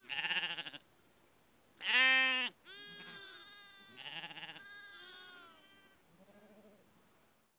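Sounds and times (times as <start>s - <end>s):
sheep in a corral on the Altiplano: 0.0s - 7.5s.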